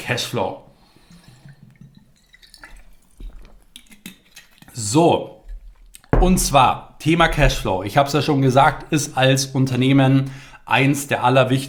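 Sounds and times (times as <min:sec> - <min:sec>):
speech: 0:00.1 - 0:00.7, 0:04.8 - 0:05.4, 0:06.2 - 0:11.6
person sipping water from a glass with slurping and swallowing: 0:00.8 - 0:06.2.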